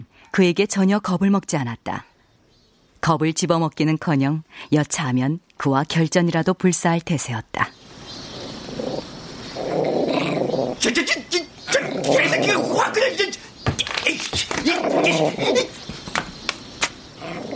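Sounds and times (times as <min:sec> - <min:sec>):
speech: 0:00.4 - 0:02.1, 0:03.0 - 0:07.9, 0:10.8 - 0:15.9
small dog growling and snarling: 0:08.3 - 0:11.0, 0:11.7 - 0:13.0, 0:14.6 - 0:15.7, 0:17.2 - 0:17.5.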